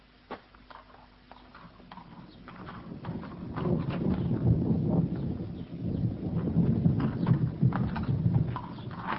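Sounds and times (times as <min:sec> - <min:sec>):
mare's hooves clip-clopping as a rider rides away: 0:00.3 - 0:09.1
rushing windy before a storm: 0:02.5 - 0:09.1.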